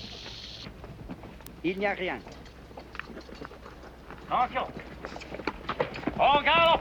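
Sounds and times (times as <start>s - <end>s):
soldiers' horses galloping off: 0.0s - 6.7s
speech: 1.6s - 2.4s, 4.3s - 4.9s, 6.2s - 6.7s.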